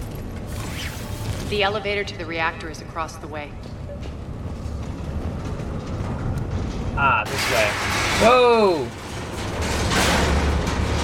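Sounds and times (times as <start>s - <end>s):
speech: 1.5s - 3.8s, 7.0s - 9.0s
structure collapsing in a video game with creaking mechanical roar: 4.4s - 11.0s.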